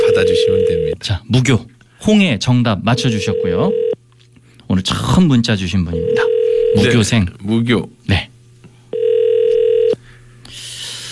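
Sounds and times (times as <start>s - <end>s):
telephone ringback tone while calling someone: 0.0s - 0.9s, 3.0s - 4.0s, 6.0s - 6.8s, 8.9s - 10.0s
speech: 0.2s - 3.8s, 4.7s - 8.3s.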